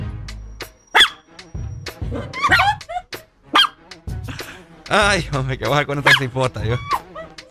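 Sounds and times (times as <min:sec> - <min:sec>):
several small dogs barking in high-pitched yips: 0:01.0 - 0:01.2, 0:02.2 - 0:02.8, 0:03.5 - 0:03.8, 0:06.0 - 0:06.3
speech: 0:02.1 - 0:02.6, 0:04.9 - 0:07.0.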